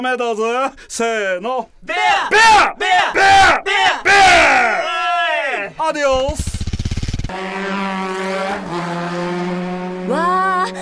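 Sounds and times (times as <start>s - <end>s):
speech: 0.0s - 4.9s, 5.8s - 6.5s
motorbike engine revving and pulling away: 6.0s - 10.2s.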